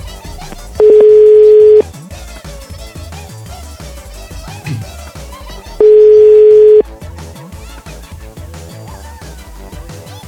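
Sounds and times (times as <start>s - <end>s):
quiet music: 0.0s - 10.2s
telephone ringback tones of an outgoing phone call: 0.8s - 1.8s, 5.8s - 6.8s.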